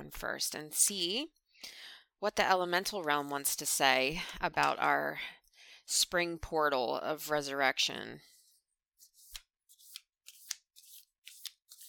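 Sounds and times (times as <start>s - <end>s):
speech: 0.1s - 8.3s
deck of oracle cards riffle shuffling: 9.0s - 11.8s.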